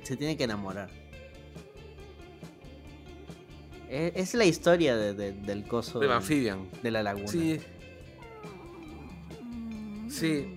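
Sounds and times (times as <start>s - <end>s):
speech: 0.0s - 1.0s, 3.9s - 7.8s, 10.2s - 10.5s
cat meowing: 8.2s - 10.0s.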